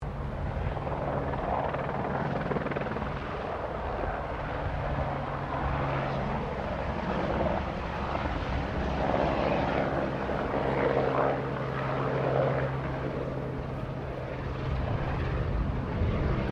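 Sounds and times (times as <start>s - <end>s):
distant firefighting helicopter flying over a small bushfire: 0.0s - 16.5s.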